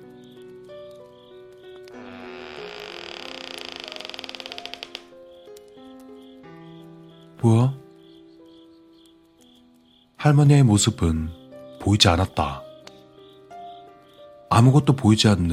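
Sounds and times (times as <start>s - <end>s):
soft music: 0.0s - 15.5s
door creaking open: 1.8s - 5.2s
speech: 7.4s - 7.8s, 10.2s - 12.6s, 14.6s - 15.5s.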